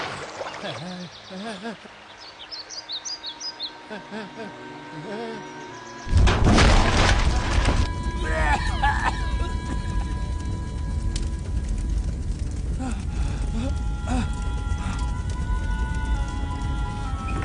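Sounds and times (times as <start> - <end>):
birds chirping by a river: 0.1 - 6.2
bridge blown up in deep explosion rumbling: 6.1 - 17.4.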